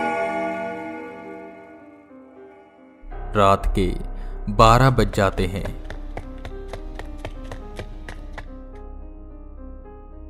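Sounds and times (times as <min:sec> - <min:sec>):
low sustained drone: 0:00.0 - 0:10.2
speech: 0:03.3 - 0:06.0
slow footsteps echoing through a house: 0:05.1 - 0:08.8.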